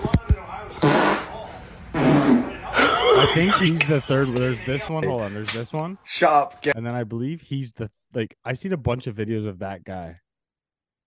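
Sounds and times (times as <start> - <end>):
farts: 0.8 - 2.6
laughter: 2.5 - 5.7
speech: 3.2 - 10.2.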